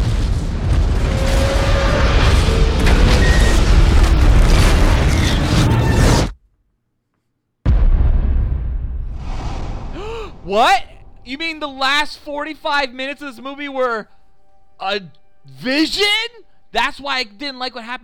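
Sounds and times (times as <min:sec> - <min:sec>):
bomb explosion in a film scene: 0:00.0 - 0:06.4, 0:07.6 - 0:11.6
speech: 0:10.5 - 0:14.2, 0:14.8 - 0:18.0.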